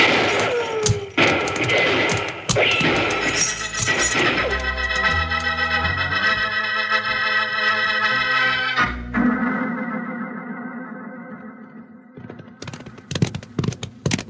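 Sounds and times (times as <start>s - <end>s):
gunshots in a Western shootout: 0.0s - 4.6s
music: 2.8s - 12.1s.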